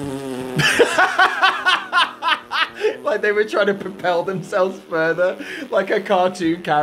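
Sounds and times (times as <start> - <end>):
speech: 0.0 - 1.8, 3.1 - 6.8
voice making a raspberry imitating a fart: 0.0 - 6.0
person laughing: 0.6 - 3.3, 5.1 - 6.0.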